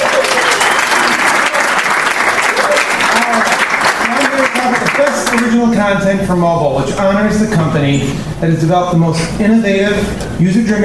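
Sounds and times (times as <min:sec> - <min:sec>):
room full of people applauding: 0:00.0 - 0:05.6
speech: 0:05.3 - 0:10.8.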